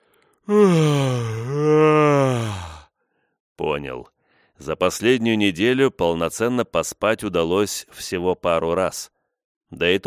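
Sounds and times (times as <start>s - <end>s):
speech: 0.5s - 0.8s, 3.6s - 10.0s
long drawn-out yawn: 0.5s - 2.9s.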